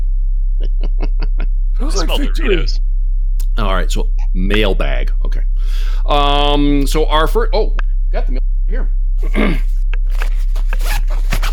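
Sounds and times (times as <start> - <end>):
laughter: 0.6 - 2.8
speech: 1.8 - 2.9, 3.6 - 9.7
zipper on a nylon bag being pulled open: 10.1 - 11.5.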